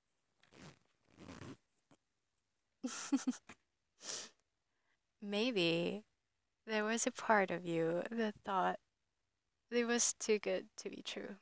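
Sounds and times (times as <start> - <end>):
fabric rustling: 0.4 - 1.6
zipper being undone by hand: 0.4 - 1.6
speech: 2.8 - 4.2, 5.2 - 8.8, 9.7 - 11.4.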